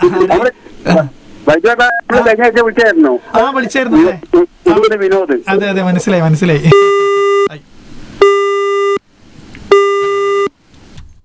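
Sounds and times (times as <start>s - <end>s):
low noise: 0.0s - 11.2s
speech: 0.2s - 7.7s
disconnected-call tone on a radio phone-in: 6.7s - 7.5s, 8.2s - 9.0s, 9.7s - 10.5s.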